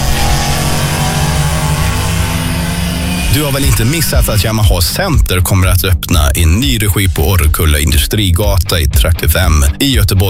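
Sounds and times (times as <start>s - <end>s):
small go-kart engine revving: 0.0s - 4.2s
speech: 3.4s - 10.2s.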